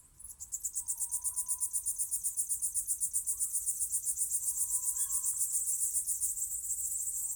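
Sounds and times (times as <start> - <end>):
crickets chirping on a summer night: 0.2 - 7.3.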